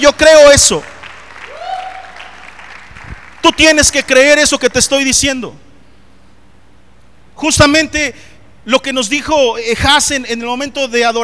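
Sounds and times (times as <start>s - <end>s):
speech: 0.0s - 1.0s, 3.6s - 5.7s, 7.4s - 11.2s
audience clapping: 0.6s - 4.4s
high cheer or whoop: 1.0s - 3.4s.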